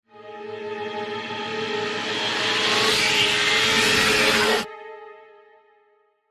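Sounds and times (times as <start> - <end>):
cold crescendo sweep climax for a trailer: 0.5 - 4.7.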